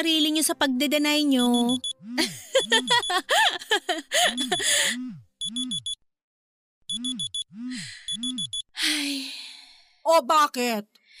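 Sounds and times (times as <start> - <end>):
speech: 0.0 - 5.9, 6.9 - 11.0
cellphone alarm ringing with a warbling melodic tone: 1.4 - 2.0, 2.6 - 3.3, 4.3 - 4.7, 5.4 - 6.0, 6.9 - 8.7
laughter: 2.2 - 4.8.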